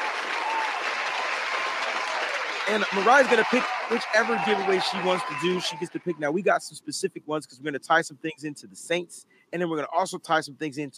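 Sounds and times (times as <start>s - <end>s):
crowd applauding: 0.0s - 6.2s
speech: 2.7s - 10.9s.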